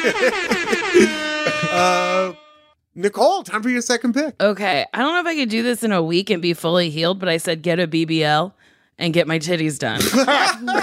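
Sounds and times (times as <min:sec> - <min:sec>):
speech: 0:00.0 - 0:01.2, 0:01.8 - 0:02.4, 0:03.0 - 0:10.8
laughter: 0:00.0 - 0:02.4, 0:10.0 - 0:10.8
loud air horn blasts: 0:00.0 - 0:02.8.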